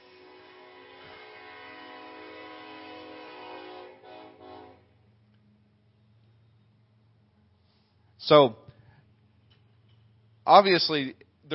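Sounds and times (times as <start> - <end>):
train horn blaring with a chord-like tone: 0.0 - 5.0
speech: 8.3 - 8.6, 10.5 - 11.5.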